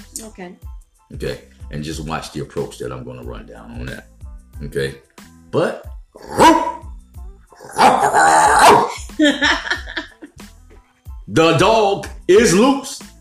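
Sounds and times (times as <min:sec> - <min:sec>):
speech: 0:00.2 - 0:06.7, 0:09.2 - 0:09.8, 0:11.3 - 0:13.0
dog barking and growling: 0:06.2 - 0:10.0
laughter: 0:08.9 - 0:10.4.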